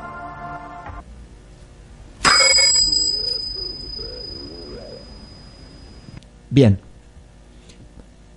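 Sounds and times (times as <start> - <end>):
quiet tonal hum: 2.0 - 6.2
small crotal bell strike: 2.3 - 6.2
speech: 6.5 - 6.8.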